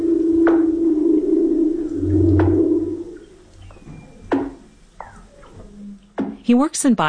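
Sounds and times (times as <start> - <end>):
humpback whale underwater moans and wavering cries: 0.0 - 6.2
speech: 6.5 - 7.0.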